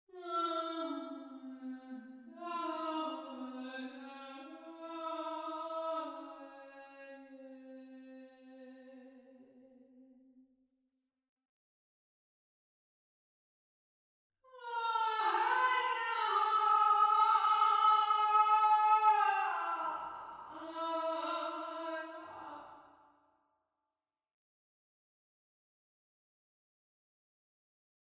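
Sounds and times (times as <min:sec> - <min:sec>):
warm natural room reverb simulation without direct microphone: 0:00.1 - 0:10.2, 0:14.5 - 0:23.2.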